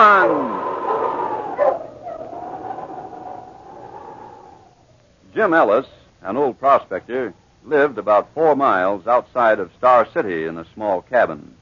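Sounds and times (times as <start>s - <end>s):
whining tone: 0.0s - 5.0s
small mongrel dog barking: 1.6s - 2.3s
speech: 5.4s - 11.6s.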